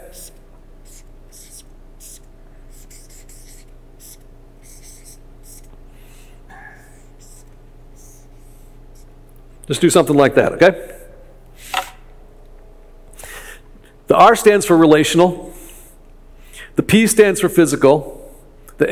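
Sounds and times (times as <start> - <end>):
steady low hum: 0.0 - 18.9
pen writing letters by hand on paper: 0.8 - 5.7
speech: 9.7 - 11.0, 14.2 - 15.5, 16.9 - 18.2.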